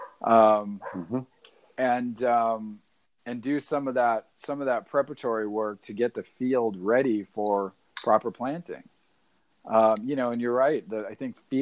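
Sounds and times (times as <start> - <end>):
dog barking: 0.0 - 0.2, 0.8 - 1.1
speech: 0.2 - 8.9, 9.6 - 11.6.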